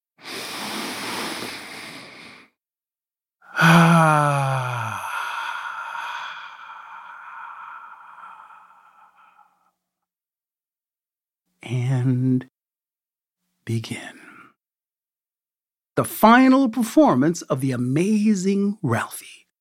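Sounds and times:
person taking a deep breath: 0.2 - 2.6, 3.4 - 9.8
speech: 13.8 - 14.2, 16.0 - 19.4.

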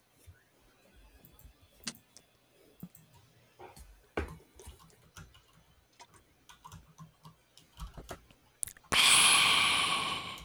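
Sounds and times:
person drinking water: 8.6 - 10.4
soft mouth clicks: 8.6 - 10.4
loud breathy exhale of satisfaction: 9.0 - 10.4.

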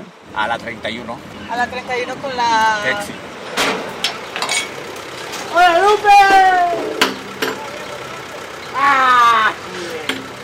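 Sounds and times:
truck engine running at a scrap metal yard in Little Village: 0.0 - 10.4
speech: 0.4 - 3.8, 5.5 - 7.0, 8.8 - 9.6
sharp metallic clanks: 3.4 - 5.5, 6.2 - 8.1.

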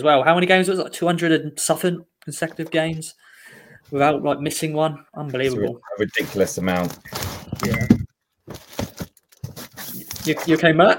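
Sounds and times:
speech: 0.0 - 8.8, 10.3 - 10.9
paper sheet rustling and crinkling: 5.5 - 10.7.

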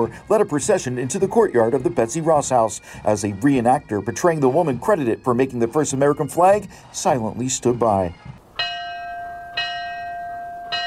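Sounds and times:
speech: 0.0 - 8.7
memorial bell tolling: 8.6 - 10.8.

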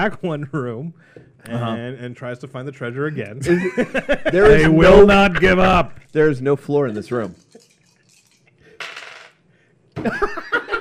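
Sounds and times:
speech: 0.0 - 7.4, 10.0 - 10.6
laughter: 3.4 - 5.9, 10.0 - 10.7
five dice tumbling across a tabletop for a knowledge roll: 7.0 - 9.4.

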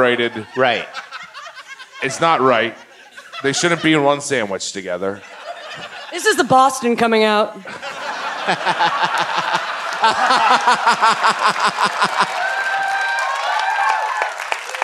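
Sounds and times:
speech: 0.0 - 1.1, 2.0 - 2.8, 3.4 - 12.4
laughter: 0.0 - 4.1, 5.2 - 6.4, 7.6 - 12.4
crowd noise: 0.0 - 14.8
cheering voices and chatter: 8.0 - 14.8
audience clapping in a steady rhythmic beat: 8.4 - 14.8.

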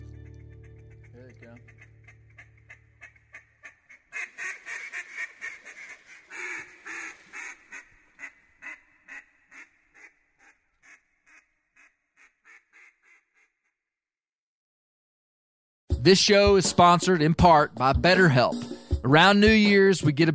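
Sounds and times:
mallard duck quacking: 0.4 - 13.6
speech: 1.4 - 1.9, 16.0 - 20.3.

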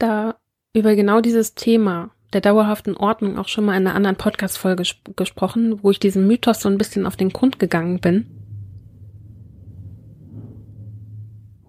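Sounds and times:
speech: 0.0 - 8.4
motorcycle passing outside: 7.6 - 11.6.

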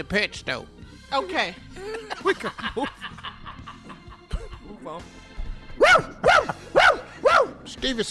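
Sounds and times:
speech: 0.0 - 3.1, 4.8 - 5.2, 7.7 - 8.0
laughter: 1.8 - 4.7
dog barking sharply: 5.8 - 7.6.

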